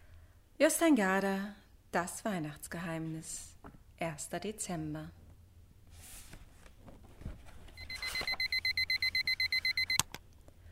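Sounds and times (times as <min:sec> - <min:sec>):
speech: 0:00.6 - 0:05.2
electronic alarm clock beeping: 0:07.8 - 0:10.0.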